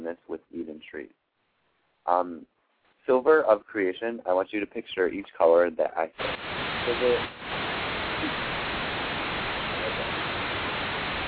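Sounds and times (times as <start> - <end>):
static hiss on a phone line: 2.1 - 2.4, 3.1 - 11.2
speech: 2.1 - 2.5, 3.1 - 7.5.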